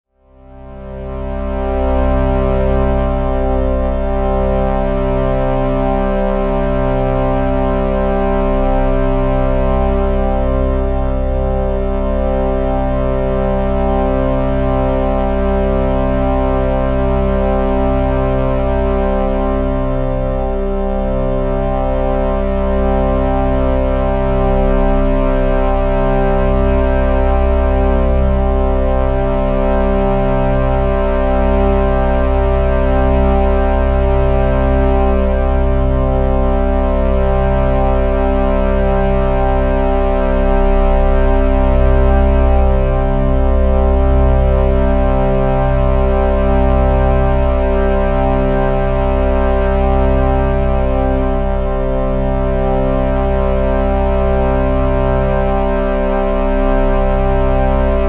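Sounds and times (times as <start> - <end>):
shruti box drone: 0.9 - 58.0.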